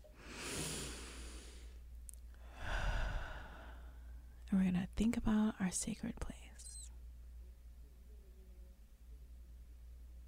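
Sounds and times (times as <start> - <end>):
group taking a deep breath together in a breathing exercise: 0.0 - 4.2
speech: 4.5 - 6.4.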